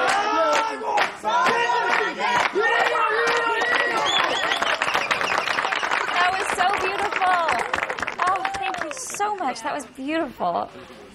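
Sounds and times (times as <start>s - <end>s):
group of voices singing and chanting loudly together: 0.0s - 3.4s
sharp claps: 0.0s - 9.6s
speech: 9.6s - 11.0s.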